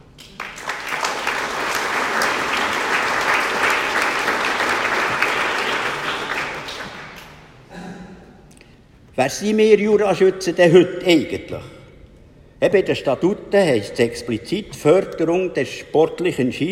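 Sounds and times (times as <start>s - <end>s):
audience applause: 0.2s - 7.5s
speech: 9.2s - 11.8s, 12.6s - 16.7s.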